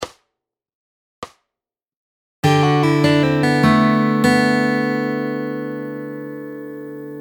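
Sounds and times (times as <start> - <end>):
fingerpicked guitar lick: 2.4 - 7.2.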